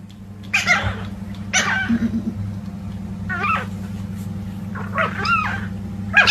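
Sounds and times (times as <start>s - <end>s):
steady low hum: 0.0s - 6.2s
chihuahua puppies squealing and yelping while fighting: 0.4s - 2.3s, 3.3s - 3.8s, 4.7s - 6.2s.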